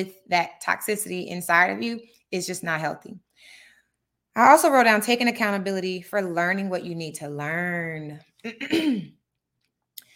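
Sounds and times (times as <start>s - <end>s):
speech: 0.0s - 3.6s, 4.4s - 9.2s
short breath or faint vocal sound: 3.3s - 4.0s
loud gravelly throat clearing: 8.5s - 9.2s.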